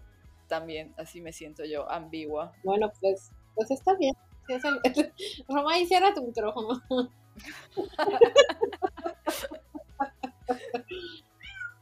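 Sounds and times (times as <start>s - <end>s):
speech: 0.5s - 9.6s, 10.5s - 11.2s
cat meowing: 4.4s - 5.0s, 11.1s - 11.8s
laughter: 7.4s - 11.2s.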